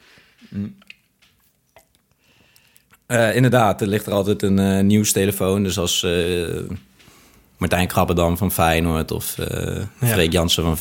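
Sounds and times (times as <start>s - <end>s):
speech: 0.5s - 0.9s, 3.1s - 6.9s, 7.6s - 10.7s
sipping and swallowing beer: 0.5s - 3.1s
wet mouth clicks: 0.5s - 3.1s.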